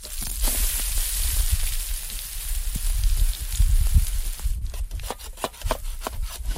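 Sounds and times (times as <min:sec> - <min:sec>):
pancakes frying at a campsite on a sunny day: 0:00.0 - 0:04.6
crackles and pops from frying pancakes: 0:00.0 - 0:05.2.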